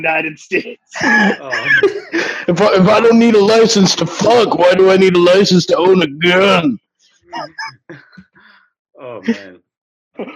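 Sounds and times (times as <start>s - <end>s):
speech: 0.0s - 8.2s, 9.0s - 9.6s, 10.2s - 10.3s
laughter: 0.6s - 5.3s, 7.4s - 8.2s, 9.0s - 9.5s
person sneezing: 1.0s - 2.4s.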